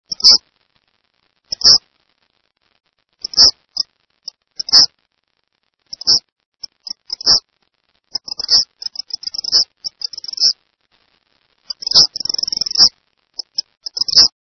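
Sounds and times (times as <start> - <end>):
Eastern Kingbird calling: 5.9 - 7.4, 8.1 - 10.5, 11.7 - 14.3.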